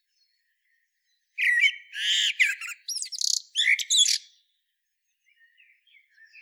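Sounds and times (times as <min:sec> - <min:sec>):
Common blackbird Turdus merula singing warbled and chattering notes: 0:01.4 - 0:04.4, 0:05.2 - 0:06.3.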